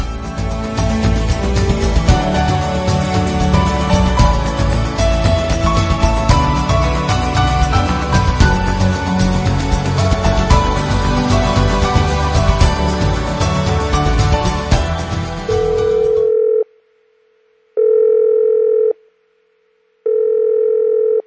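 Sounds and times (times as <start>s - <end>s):
music: 0.0s - 16.3s
telephone ringing in electronic bursts: 15.6s - 16.7s, 17.8s - 19.0s, 20.1s - 21.2s.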